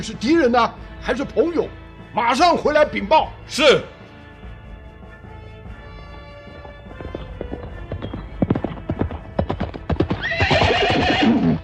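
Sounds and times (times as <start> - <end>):
speech: 0.0 - 4.0
cavalry horse hooves galloping: 4.7 - 11.6
horse whinnying: 7.0 - 11.6.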